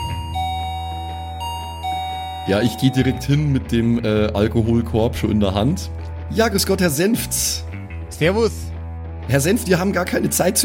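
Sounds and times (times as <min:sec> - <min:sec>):
doorbell two-tone ding-dong chime: 0:00.0 - 0:03.6
speech: 0:02.4 - 0:08.7, 0:09.3 - 0:10.6.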